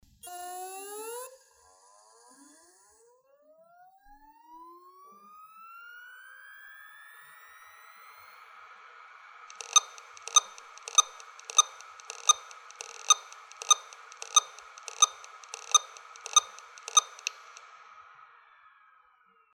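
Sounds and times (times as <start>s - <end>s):
Samsung HD103UI hard drive beeps: 9.5s - 17.6s.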